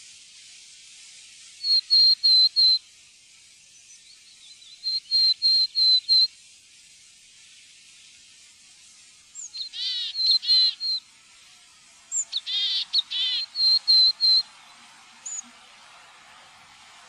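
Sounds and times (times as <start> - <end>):
willow tit song of level whistled notes: 1.6 - 2.8, 4.4 - 6.3, 9.4 - 11.0, 12.2 - 14.6, 15.2 - 15.5
willow tit harsh buzzy nasal calls: 8.7 - 15.6.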